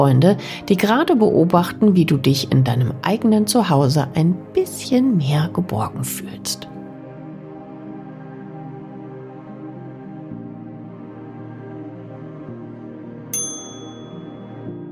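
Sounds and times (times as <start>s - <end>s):
speech: 0.0s - 6.7s
mellow music: 0.0s - 14.8s
oven timer ding: 13.4s - 14.4s.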